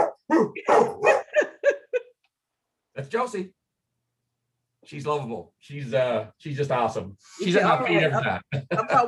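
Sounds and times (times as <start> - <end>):
female pet dog barking and yowling on cue: 0.0 - 1.6
speech: 0.3 - 1.0, 3.1 - 3.6, 4.8 - 9.0
laughter: 1.3 - 2.1, 7.7 - 9.0.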